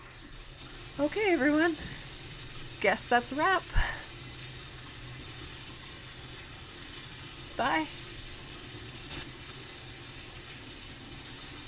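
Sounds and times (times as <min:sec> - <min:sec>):
bath water gushing from a tap: 0:00.0 - 0:11.6
speech: 0:01.0 - 0:01.9, 0:02.8 - 0:03.9, 0:07.6 - 0:08.0.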